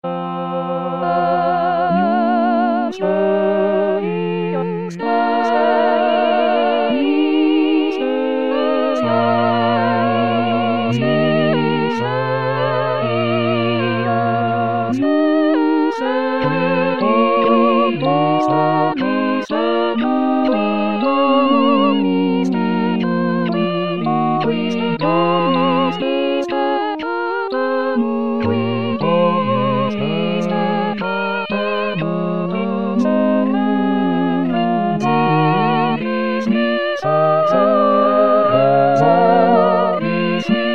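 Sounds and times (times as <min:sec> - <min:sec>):
full choir singing a sacred piece: 0:01.0 - 0:40.7.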